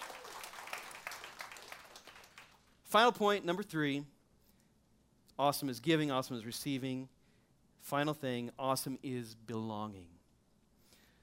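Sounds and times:
audience applause: 0.0 - 2.6
speech: 2.9 - 4.1, 5.4 - 7.2, 7.8 - 10.2.

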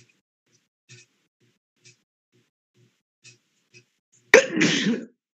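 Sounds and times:
loud sneeze: 4.4 - 5.2.

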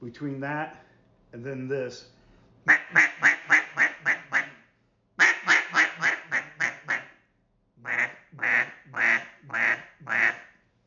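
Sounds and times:
speech: 0.0 - 3.2
duck call blowing deep hen quacks imitating a boss hen: 2.7 - 4.6, 5.2 - 7.1, 7.8 - 10.5.

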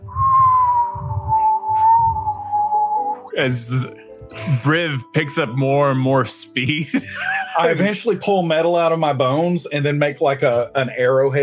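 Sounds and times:
low rumbling rush of wind: 0.0 - 3.2
sustained high whistle drifting lower: 0.0 - 3.4
speech: 3.4 - 11.4
laughter: 6.6 - 9.0.

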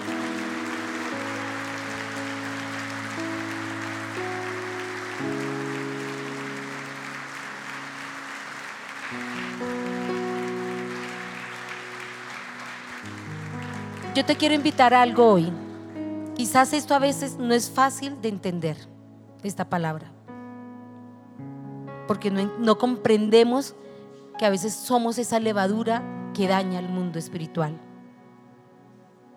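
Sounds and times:
church audience clapping after a prayer: 0.0 - 16.0
speech: 14.2 - 15.6, 16.4 - 20.2, 22.1 - 23.8, 24.4 - 27.9.

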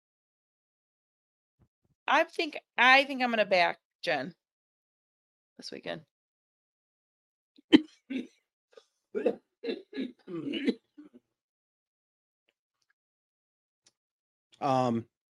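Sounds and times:
speech: 2.1 - 4.4, 5.6 - 6.1, 7.7 - 8.4, 9.2 - 10.8, 14.6 - 15.1
person coughing: 7.7 - 8.3, 9.2 - 10.9.

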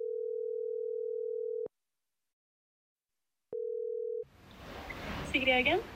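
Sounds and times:
telephone ringing tone: 0.0 - 1.7, 3.5 - 4.3
faint noise on a phone line: 4.2 - 5.9
speech: 5.3 - 5.9.

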